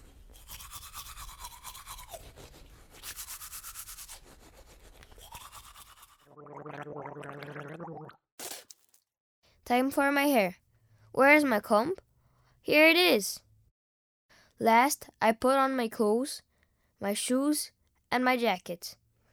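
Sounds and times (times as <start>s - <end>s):
toothbrush scrubbing with toothpaste: 0.0s - 6.2s
short splash or spit: 0.3s - 4.1s, 5.0s - 9.0s
gargling water: 5.2s - 8.2s
speech: 9.7s - 10.6s, 11.2s - 12.0s, 12.6s - 13.4s, 14.6s - 19.0s.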